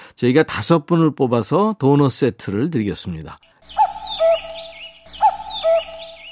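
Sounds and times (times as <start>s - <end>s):
speech: 0.2s - 3.5s
cuckoo calling two-note cu-coo: 3.4s - 6.2s
small birds twittering: 3.4s - 6.2s.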